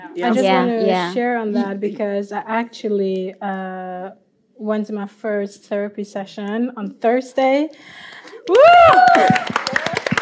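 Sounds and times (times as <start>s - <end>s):
speech: 0.2s - 9.8s
people clapping: 7.9s - 10.2s
rising drawn-out vocal cry: 8.5s - 9.4s.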